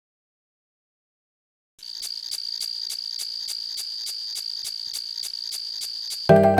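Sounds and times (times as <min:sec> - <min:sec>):
cricket chirping: 0:01.8 - 0:06.4.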